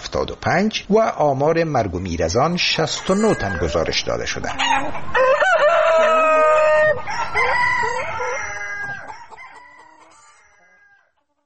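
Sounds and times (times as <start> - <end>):
speech: 0.2 - 5.3
hens kept at home clucking: 2.2 - 11.3
rooster kept at home crowing: 2.9 - 11.2.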